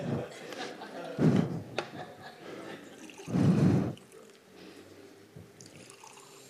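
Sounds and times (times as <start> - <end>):
laughter: 0.0 - 3.9
Ethiopian coffee pouring into a cup: 2.9 - 3.3, 5.6 - 6.4.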